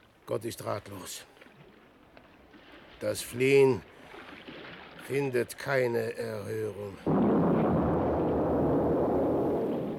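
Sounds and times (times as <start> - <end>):
speech: 0.3 - 1.4, 3.0 - 3.9, 5.0 - 7.2
ship exploding and sinking roaring rumble: 7.1 - 9.9.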